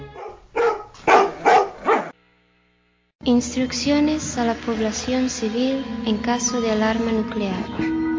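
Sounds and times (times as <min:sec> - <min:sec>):
dog barking: 0:00.1 - 0:02.2
speech: 0:03.3 - 0:08.0.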